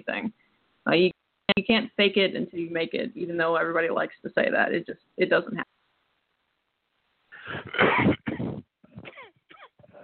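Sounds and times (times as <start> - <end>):
speech: 0.0 - 5.7
raspy wheezing throat sound: 7.4 - 9.2
harsh coughs: 7.4 - 9.8.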